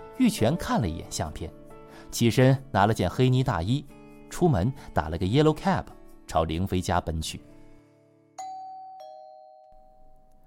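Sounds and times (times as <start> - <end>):
speech: 0.2 - 7.5
two-tone ding-dong doorbell ringing: 8.4 - 10.4.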